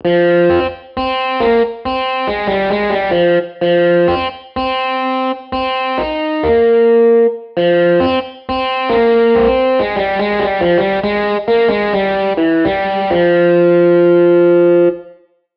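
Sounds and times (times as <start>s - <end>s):
electric guitar: 0.0s - 15.3s.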